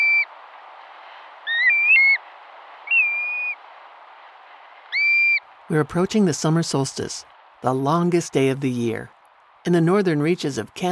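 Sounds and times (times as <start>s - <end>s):
black-bellied plover whistled call: 1.5s - 2.2s, 2.8s - 3.6s, 4.9s - 5.4s
speech: 5.7s - 10.9s.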